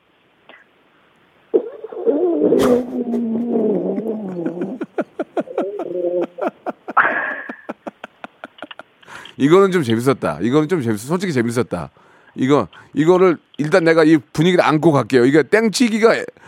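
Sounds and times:
voice imitating a stomach upset by gastroenteritis: 1.5 - 4.8
speech: 2.4 - 4.8, 9.4 - 16.4
laughter: 2.6 - 9.0.

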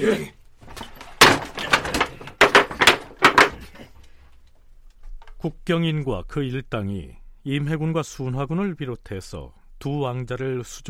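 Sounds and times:
speech: 0.0 - 0.4, 5.4 - 10.8
wooden bar clunking and rattling into place to lock a door: 0.6 - 4.2
heavy storehouse door thudding shut: 0.7 - 3.8.

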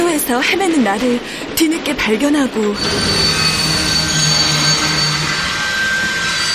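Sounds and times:
speech: 0.2 - 3.5
train brakes squealing during sudden stop to avoid a child: 2.7 - 6.5.

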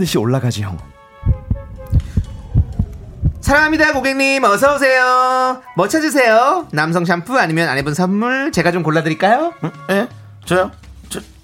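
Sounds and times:
speech: 0.0 - 1.0, 3.4 - 11.3
racing heartbeat sound effect: 1.3 - 4.1
faint sustained hum: 1.3 - 4.8.

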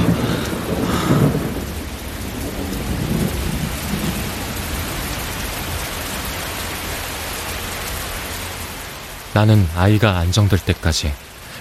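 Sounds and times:
low rumbling thunder: 0.0 - 6.1
steady rain pouring down: 0.0 - 11.5
speech: 9.4 - 11.3.

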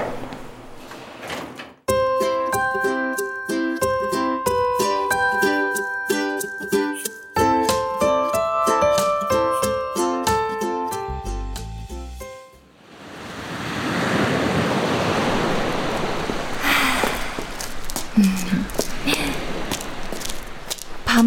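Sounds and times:
music: 1.9 - 12.7
ocean surf at seaside: 12.7 - 21.1
gusting wind at seaside: 12.7 - 21.2.

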